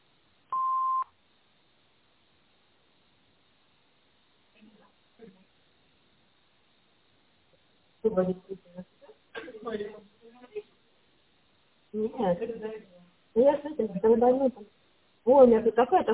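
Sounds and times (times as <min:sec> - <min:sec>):
answering machine electronic beep tone: 0:00.5 - 0:01.1
speech: 0:08.0 - 0:09.0, 0:11.9 - 0:16.1.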